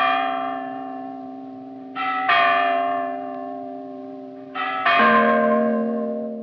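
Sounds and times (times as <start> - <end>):
church bells ringing: 0.0 - 6.4.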